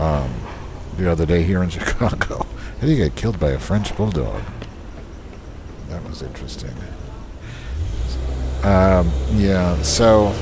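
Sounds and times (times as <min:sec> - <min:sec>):
speech: 0:01.0 - 0:04.6, 0:06.1 - 0:07.0, 0:08.1 - 0:10.4
car engine rumbling and accelerating outdoors in Chicago: 0:07.6 - 0:10.4.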